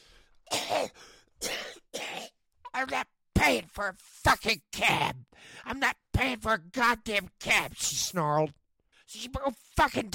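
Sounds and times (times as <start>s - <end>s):
harsh forceful coughs: 0.5s - 2.4s
speech: 0.8s - 1.5s, 2.8s - 10.1s.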